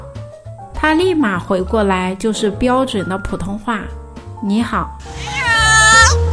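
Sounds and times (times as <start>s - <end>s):
speech: 0.8s - 5.4s
cat meowing: 5.0s - 6.2s.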